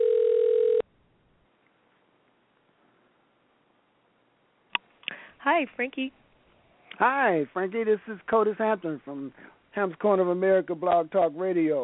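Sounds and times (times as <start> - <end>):
telephone dial tone: 0.0 - 0.8
speech: 5.5 - 6.2, 7.0 - 11.8.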